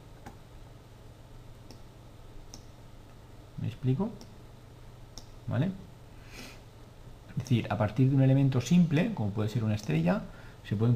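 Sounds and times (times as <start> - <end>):
steady low electrical hum: 0.0 - 10.9
speech: 3.6 - 4.4, 5.5 - 5.8, 7.4 - 10.9
quiet computer mouse clicks while dragging: 5.2 - 5.4.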